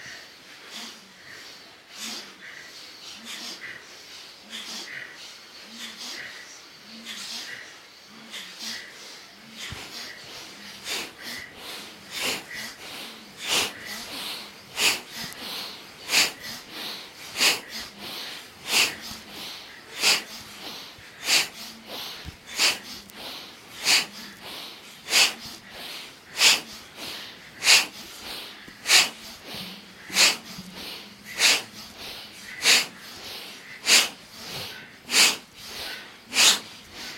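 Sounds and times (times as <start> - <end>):
forceful breaths through the nose during a breathing exercise: 0.0 - 37.1.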